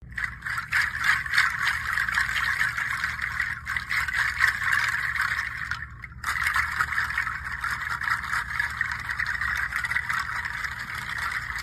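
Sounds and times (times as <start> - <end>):
Pangi seed shaker: 0.0 - 11.6.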